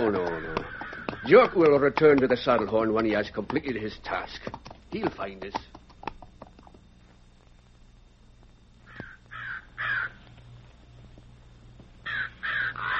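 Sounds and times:
crows cawing: 0.0 - 2.8, 8.8 - 10.3, 12.0 - 12.9
low steady hum: 0.0 - 12.9
speech: 1.3 - 5.7.

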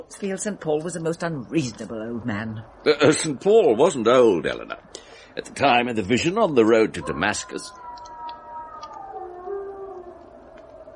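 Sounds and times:
speech: 0.1 - 7.8
wild dog howling: 6.4 - 10.9.

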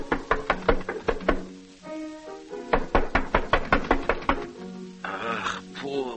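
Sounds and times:
visitor knocking on the wooden door of a modest home in Vienna: 0.0 - 1.5, 2.7 - 4.6.

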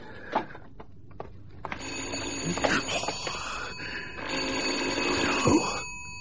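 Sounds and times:
telephone bell ringing: 1.7 - 6.1.

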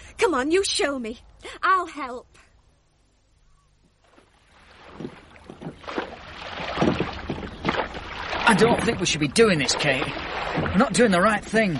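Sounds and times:
wind: 0.0 - 11.7
speech: 0.2 - 2.5, 8.5 - 11.7
oars dipping and pulling through lake water: 4.0 - 11.7.

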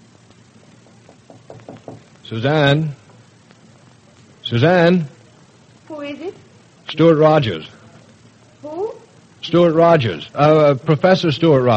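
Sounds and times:
knocking on a wooden door: 1.1 - 2.1
speech: 2.3 - 3.0, 4.5 - 5.2, 6.9 - 7.8, 9.5 - 11.7.

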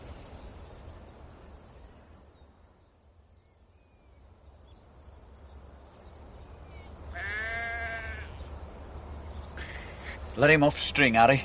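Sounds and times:
steady outdoor wind: 0.0 - 11.4
sheep bleating in an open field: 7.1 - 8.4
speech: 10.4 - 11.4.

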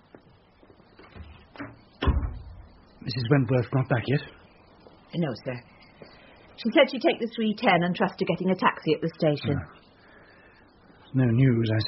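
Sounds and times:
household door being shut: 1.0 - 2.7
speech: 3.1 - 4.4, 5.1 - 5.7, 6.6 - 9.8, 11.1 - 11.8.

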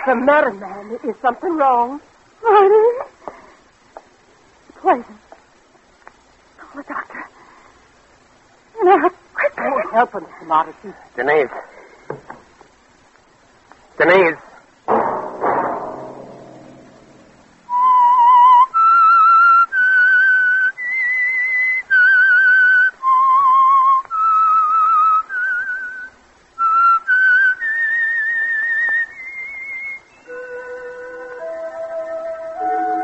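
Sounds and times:
speech: 0.0 - 3.1, 4.8 - 5.2, 8.9 - 11.8, 14.0 - 14.5
loud dull thud: 14.9 - 17.3
whistled melody of long held notes: 17.7 - 33.0.

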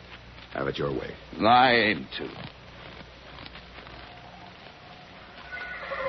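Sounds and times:
speech: 0.6 - 2.6
horse whinnying: 5.2 - 6.0.

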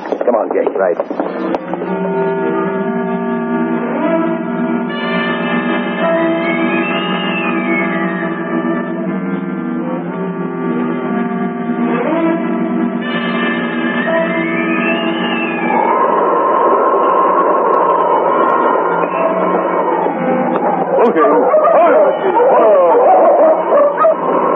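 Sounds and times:
steady droning tones: 0.0 - 24.5
speech: 0.3 - 2.7
dog barking and whimpering: 21.4 - 24.3.

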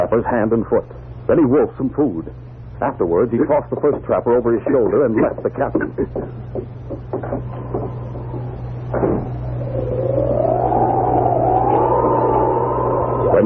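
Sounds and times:
constant low droning hum: 0.0 - 13.4
speech: 0.1 - 7.6
knocks and clatters: 5.7 - 9.3
long wavering wolf-like howl: 7.2 - 13.4.

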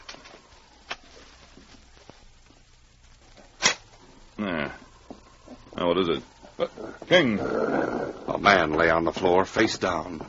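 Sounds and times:
speech: 4.4 - 4.8, 5.8 - 10.2
dog growling: 4.4 - 9.0.

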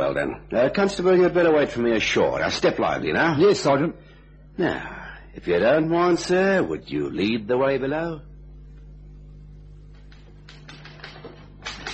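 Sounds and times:
low steady hum: 0.0 - 11.9
speech: 0.1 - 8.3
rapid mechanical typewriter keystrokes: 10.1 - 11.9.

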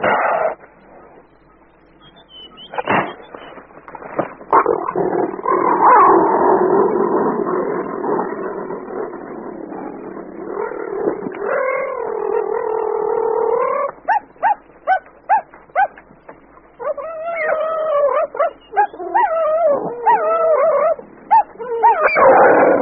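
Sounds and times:
cheetahs yowling and snarling while fighting over a reedbuck carcass: 4.5 - 16.0, 16.8 - 22.8.

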